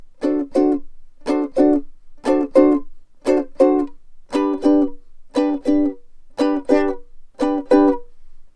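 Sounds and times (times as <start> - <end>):
ukulele double chop strum: 0.2 - 8.1.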